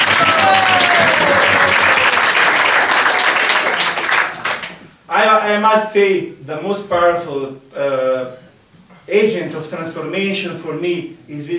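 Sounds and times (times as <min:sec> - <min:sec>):
crowd clapping: 0:00.0 - 0:04.9
speech: 0:05.4 - 0:08.4, 0:09.1 - 0:11.5.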